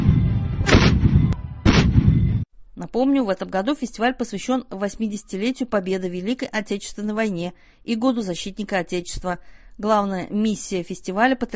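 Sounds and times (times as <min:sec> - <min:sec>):
artillery gun firing: 0:00.0 - 0:02.4
constant low rumble: 0:00.0 - 0:02.5
speech: 0:02.8 - 0:11.5.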